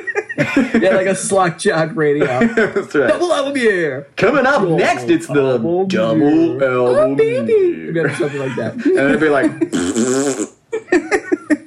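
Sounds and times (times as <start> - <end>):
laughter: 0.0 - 3.6, 7.0 - 9.9, 10.8 - 11.6
speech: 0.4 - 10.5
drawn-out buzzing fart noise made with the mouth: 9.6 - 10.7
shorter sputtering mouth puffs: 9.7 - 10.6.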